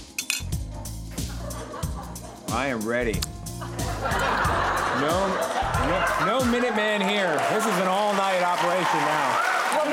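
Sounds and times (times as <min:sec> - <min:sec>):
glasses clinking in a toast: 0:00.1 - 0:00.6
laughter: 0:01.1 - 0:02.8, 0:03.5 - 0:09.0
speech: 0:02.5 - 0:09.9.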